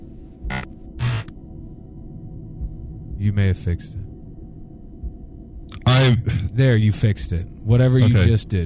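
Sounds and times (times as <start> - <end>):
low steady electrical hum on a phone line: 0.0 - 8.6
bursts of harsh broadband static: 0.5 - 1.3
speech: 3.2 - 4.0, 6.2 - 8.6.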